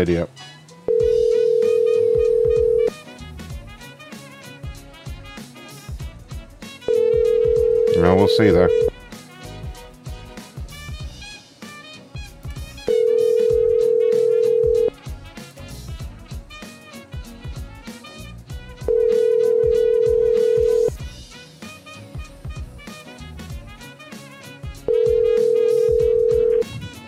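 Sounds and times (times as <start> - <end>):
speech: 0.0 - 0.5, 8.0 - 8.9
busy music: 0.0 - 27.0
phone line ringback tones while waiting for answer: 0.9 - 2.9, 6.9 - 8.9, 12.9 - 14.9, 18.9 - 20.9, 24.9 - 26.7.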